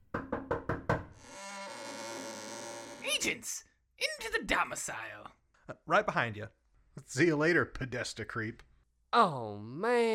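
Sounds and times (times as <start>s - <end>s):
firm knocking on a study door: 0.0s - 1.2s
speech: 3.2s - 10.1s.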